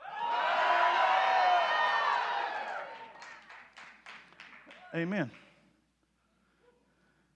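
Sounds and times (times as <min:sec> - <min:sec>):
church audience shouting and whooping in praise to God: 0:00.0 - 0:03.2
speech: 0:04.9 - 0:05.4.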